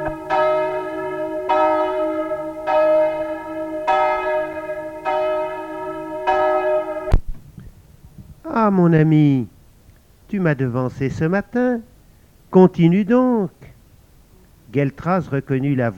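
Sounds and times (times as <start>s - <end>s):
church bell tolling: 0.0s - 7.2s
speech: 8.7s - 9.6s, 10.3s - 11.9s, 12.5s - 13.6s, 14.7s - 15.9s.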